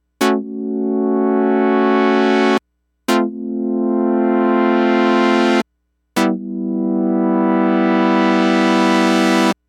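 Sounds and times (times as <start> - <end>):
Juno6 synthesizer chord: 0.2 - 5.6, 6.2 - 9.6.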